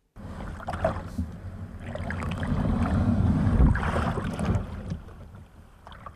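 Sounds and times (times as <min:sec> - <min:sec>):
light wind on the microphone: 0:00.2 - 0:05.1
kayak pushed off a riverbank into the River Dee: 0:00.2 - 0:06.1.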